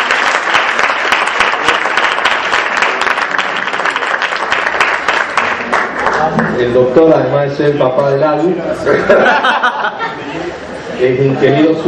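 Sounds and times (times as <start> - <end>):
audience applauding a guest speaker at a Catholic talk on faith and science: 0.0 - 6.7
speech: 6.6 - 9.7, 11.0 - 11.8
laughter: 8.7 - 11.1.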